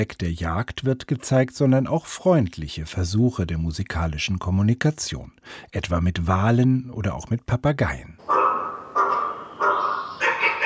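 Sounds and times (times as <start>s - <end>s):
speech: 0.0s - 8.4s
AI-controlled raven cawing: 8.3s - 10.6s.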